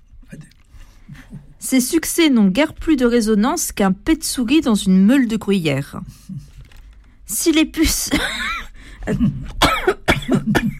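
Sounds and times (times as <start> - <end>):
speech: 1.1 - 6.5, 7.3 - 10.0
throat-clearing coughs: 7.9 - 10.7.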